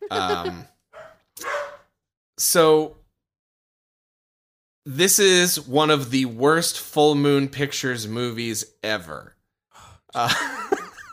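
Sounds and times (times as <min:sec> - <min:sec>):
laughter: 0:00.0 - 0:00.6, 0:10.2 - 0:11.1
speech: 0:00.1 - 0:00.7, 0:02.4 - 0:03.0, 0:04.8 - 0:09.4, 0:10.1 - 0:10.8
dogs barking: 0:01.0 - 0:01.9.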